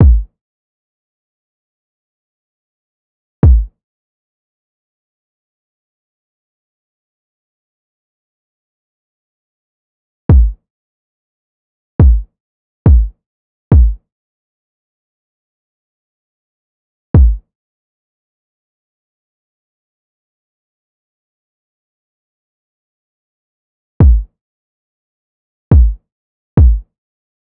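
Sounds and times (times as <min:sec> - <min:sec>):
kick drum loops from a drum sample pack: 0:00.0 - 0:00.3, 0:03.4 - 0:03.7, 0:10.3 - 0:10.6, 0:12.0 - 0:12.3, 0:12.9 - 0:13.1, 0:13.7 - 0:14.0, 0:17.2 - 0:17.4, 0:24.0 - 0:24.3, 0:25.7 - 0:26.0, 0:26.6 - 0:26.8.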